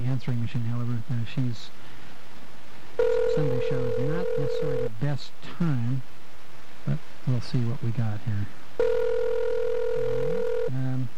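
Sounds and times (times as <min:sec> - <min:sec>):
speech: 0:00.1 - 0:02.0, 0:03.0 - 0:06.2, 0:06.8 - 0:08.6
ringback tone of an outgoing telephone call: 0:03.0 - 0:04.9, 0:08.8 - 0:10.8.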